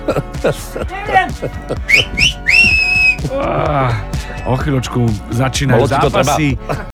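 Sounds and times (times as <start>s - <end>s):
speech: 0.1s - 6.9s
loud piercing whistle blast: 1.9s - 3.2s.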